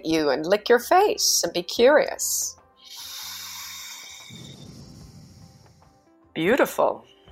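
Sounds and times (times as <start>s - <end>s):
speech: 0.0s - 2.6s, 6.4s - 7.1s
slow exhale through the nose: 2.8s - 6.1s.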